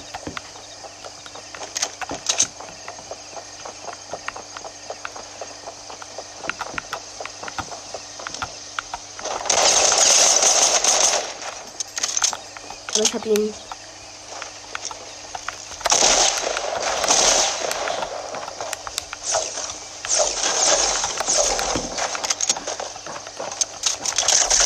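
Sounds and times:
video game assault rifle gunfire: 5.9 - 13.5, 14.7 - 24.6
speech: 13.1 - 13.7.

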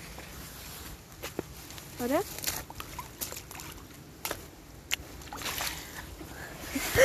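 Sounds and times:
water splashing and lapping at a lake: 0.0 - 7.0
speech: 2.0 - 2.6
water plops: 2.4 - 6.0.

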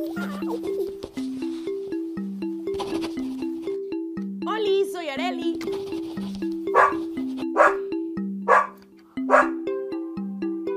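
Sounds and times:
speech: 0.0 - 1.1
light plucked music: 0.0 - 10.7
dog barking: 6.7 - 7.0, 7.6 - 7.8, 8.5 - 9.6.

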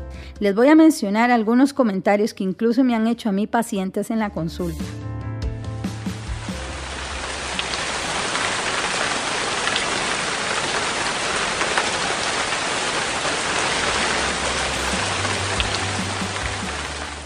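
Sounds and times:
speech: 0.4 - 5.1
steady rain falling: 6.1 - 17.2.

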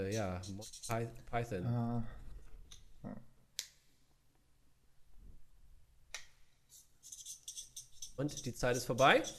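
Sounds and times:
pens squeaking and scratching across paper: 0.0 - 1.3, 6.7 - 9.3
speech: 0.0 - 2.2, 3.0 - 3.3, 8.2 - 9.3.

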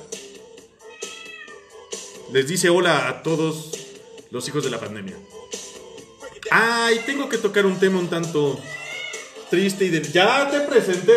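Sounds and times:
cat meowing: 0.8 - 1.7, 6.6 - 7.4, 8.6 - 9.4
speech: 2.3 - 5.4, 6.5 - 8.7, 9.5 - 11.1.

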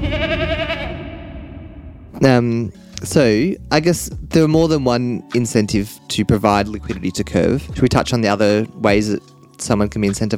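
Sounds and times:
goat bleating: 0.0 - 1.0
speech: 2.2 - 10.3.

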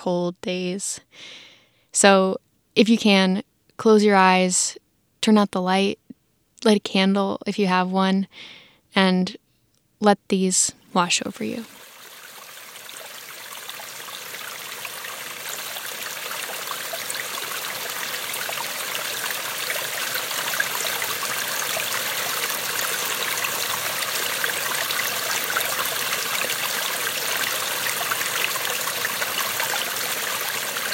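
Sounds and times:
speech: 0.0 - 6.0, 6.6 - 9.4, 10.0 - 11.9
mountain stream at the source of a river flowing: 10.8 - 30.9
bright trickling splashes of stream water: 11.0 - 30.9.

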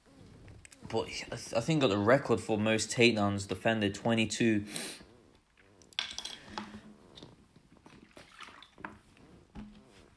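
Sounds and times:
speech: 0.9 - 5.0
person drinking water and swallowing: 5.8 - 10.1
glass or bottle clinking: 6.0 - 6.8.

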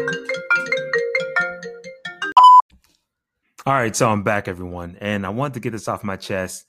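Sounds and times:
phone ringtone for an incoming call: 0.1 - 2.6
short high beep: 2.3 - 2.6
speech: 3.7 - 6.6.

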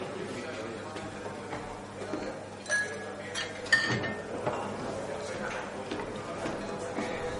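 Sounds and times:
murmur of voices: 0.0 - 7.3
tall tumbler of gin and tonic with ice clinking: 2.6 - 4.2.

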